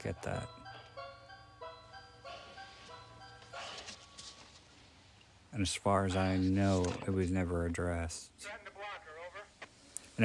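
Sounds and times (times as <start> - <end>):
speech: 0.0 - 0.6, 5.5 - 8.6
ice cream truck tinkling chime melody: 0.0 - 4.3.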